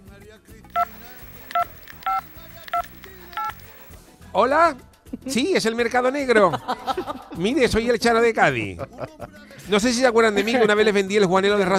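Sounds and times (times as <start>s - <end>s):
low noise: 0.7s - 4.0s
push-button telephone tones as a number is dialed: 0.7s - 4.0s
speech: 4.4s - 11.7s
laughter: 6.4s - 7.5s, 8.8s - 9.4s.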